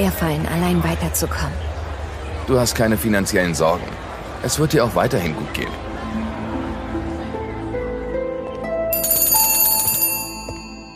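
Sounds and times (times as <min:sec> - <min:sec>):
speech: 0:00.1 - 0:01.8, 0:02.5 - 0:06.2
soft music: 0:05.0 - 0:10.9
telephone bell ringing with a metallic trill: 0:08.9 - 0:10.9.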